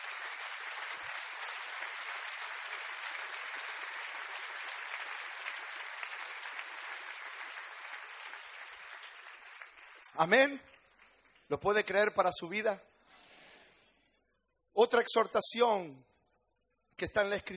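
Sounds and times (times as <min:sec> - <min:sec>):
large audience applauding: 0:00.0 - 0:11.4
speech: 0:10.2 - 0:10.7, 0:11.5 - 0:12.9, 0:14.8 - 0:16.1, 0:17.0 - 0:17.5.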